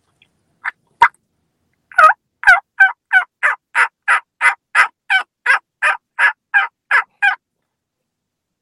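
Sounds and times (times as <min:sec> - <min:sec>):
person imitating turkey hen yelps by mouth: 0:01.9 - 0:07.4.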